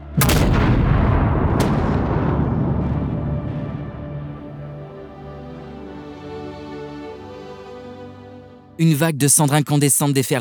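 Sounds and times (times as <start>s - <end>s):
massive volcanic explosion: 0.0s - 5.8s
sharp crack: 0.0s - 6.0s
deep heavy volcanic rumble: 0.2s - 6.0s
speech: 8.8s - 10.3s.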